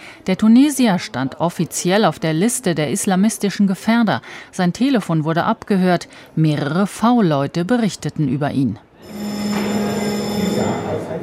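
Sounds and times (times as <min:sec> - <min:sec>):
speech: 0:00.2 - 0:09.3
electric bell ringing to call members of parliament to a vote: 0:09.0 - 0:11.2.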